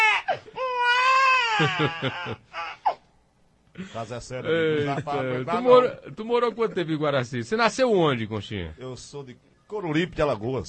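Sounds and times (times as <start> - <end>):
infant crying: 0.0 - 3.1
laughter: 1.5 - 2.5, 4.6 - 5.6
speech: 1.6 - 2.6, 3.8 - 10.6.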